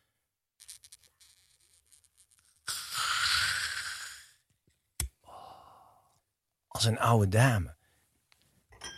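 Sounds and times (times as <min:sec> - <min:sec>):
bottle cork creaking as bottle is turned: 0:00.6 - 0:03.4
gas hissing as bottle cork eases out: 0:02.7 - 0:04.3
speech: 0:06.8 - 0:07.8.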